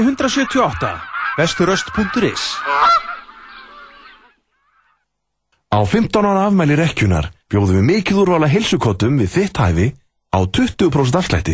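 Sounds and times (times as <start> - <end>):
speech: 0.0 - 3.0, 5.7 - 11.5
geese honking: 0.0 - 5.0.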